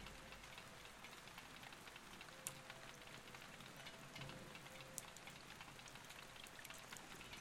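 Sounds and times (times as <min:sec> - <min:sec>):
steady rain: 0:00.0 - 0:07.3.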